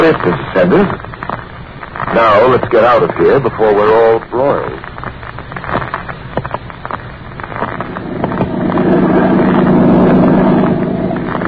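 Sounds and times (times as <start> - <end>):
speech: 0.0 - 1.2, 2.1 - 5.2
wind: 0.0 - 11.4
motorboat engine droning on a lake: 6.6 - 11.4.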